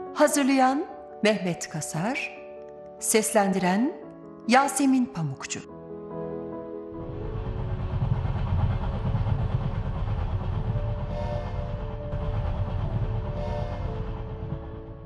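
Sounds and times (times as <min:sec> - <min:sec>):
speech: 0:00.2 - 0:02.4, 0:03.0 - 0:05.7
train rolling on rails: 0:07.0 - 0:15.0.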